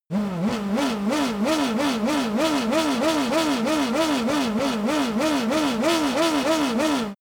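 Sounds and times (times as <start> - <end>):
F1 racing car engine revving: 0.1 - 7.1.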